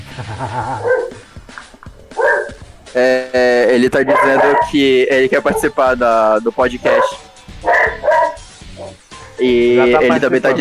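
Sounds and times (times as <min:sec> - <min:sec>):
laughter: 0:00.0 - 0:01.9, 0:09.5 - 0:10.6
speech: 0:00.2 - 0:01.2, 0:02.9 - 0:07.2, 0:09.4 - 0:10.6
pet dog barking and yipping: 0:00.8 - 0:01.2, 0:02.0 - 0:02.7, 0:04.0 - 0:05.9, 0:06.7 - 0:09.4.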